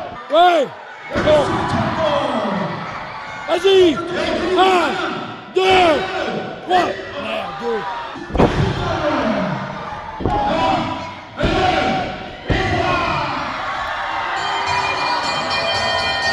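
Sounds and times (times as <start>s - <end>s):
wrestling crowd cheering and shouting: 0.0s - 16.3s
speech: 0.3s - 2.2s, 3.5s - 9.0s.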